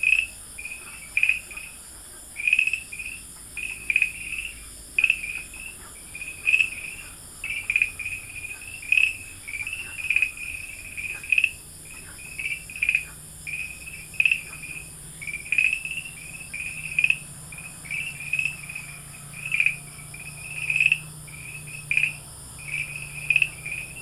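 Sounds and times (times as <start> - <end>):
Farmland green tree frog chirping calls: 0.0 - 24.0.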